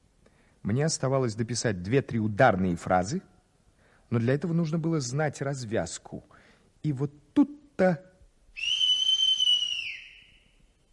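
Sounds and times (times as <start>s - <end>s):
speech: 0.6s - 3.3s, 4.1s - 8.8s
sinister two-tone whistle: 8.6s - 10.7s.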